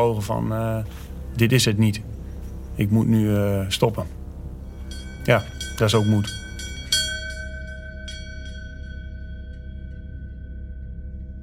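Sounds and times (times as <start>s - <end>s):
speech: 0.0s - 2.2s, 2.8s - 4.2s, 5.3s - 6.4s
low rumble: 0.0s - 11.4s
bell pulled by commando trainees to quit selection: 3.7s - 11.4s
faint clangs: 4.7s - 10.6s.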